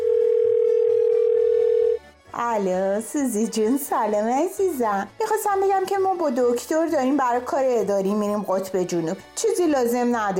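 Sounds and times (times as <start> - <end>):
telephone dial tone before a call: 0.0 - 2.0
speech: 2.4 - 10.3.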